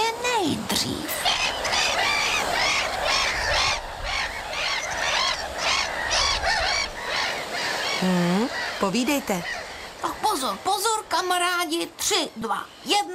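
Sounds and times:
low rumble of wind or surf: 0:00.0 - 0:13.1
speech: 0:00.4 - 0:01.3, 0:08.0 - 0:08.2, 0:08.8 - 0:09.6, 0:10.3 - 0:13.1
seagull cries: 0:01.1 - 0:10.6.

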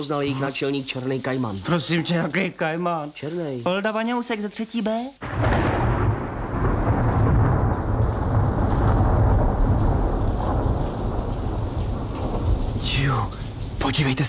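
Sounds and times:
speech: 0:00.0 - 0:05.7
heavy rain pouring: 0:00.0 - 0:14.2
deep rolling thunder: 0:05.2 - 0:14.2.

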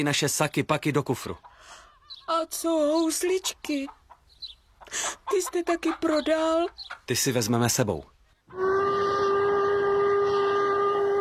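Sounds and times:
speech: 0:00.0 - 0:04.0, 0:04.9 - 0:09.0
steam whistle blowing: 0:08.5 - 0:11.1.

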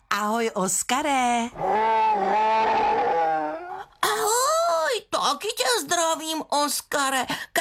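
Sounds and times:
speech: 0:00.2 - 0:03.2, 0:05.3 - 0:07.5
bear growling as a greeting: 0:01.5 - 0:04.0.

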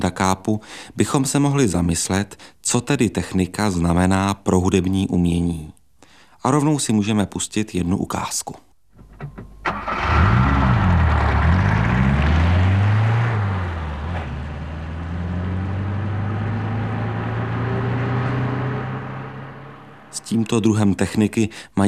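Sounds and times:
speech: 0:00.1 - 0:05.8, 0:06.4 - 0:08.6, 0:20.3 - 0:21.8
car engine starting, revving and running as the car drives: 0:09.0 - 0:20.4.

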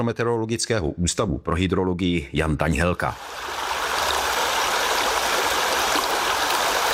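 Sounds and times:
speech: 0:00.0 - 0:03.6
Sázava River flowing over stones at its bank: 0:03.2 - 0:06.9.

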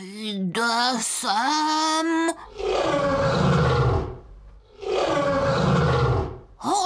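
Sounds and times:
speech: 0:00.3 - 0:03.2
lion roaring: 0:02.4 - 0:06.6.

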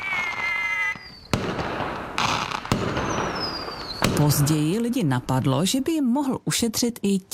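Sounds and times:
whistling firework rocket rising outdoors: 0:00.0 - 0:01.5, 0:02.3 - 0:04.3
firework explosive bangs and crackling bursts outdoors: 0:00.0 - 0:05.1
speech: 0:04.2 - 0:07.3.

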